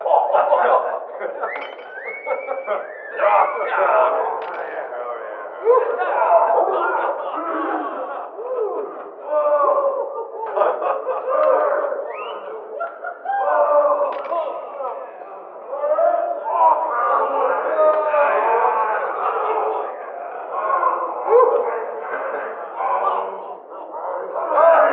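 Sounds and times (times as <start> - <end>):
ambience in a house: 0.0 - 24.9
laughter: 0.0 - 24.9.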